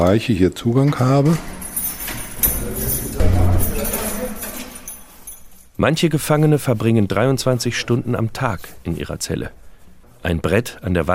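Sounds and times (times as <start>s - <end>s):
speech: 0.0s - 1.6s, 5.8s - 9.6s, 10.2s - 11.1s
large bunch of keys rattling and jingling: 1.2s - 6.7s.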